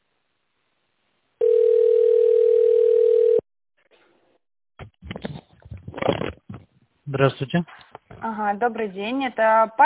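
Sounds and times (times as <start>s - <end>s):
phone line noise: 1.4s - 3.4s
telephone ringback tone during call transfer: 1.4s - 3.4s
speech: 7.2s - 9.8s.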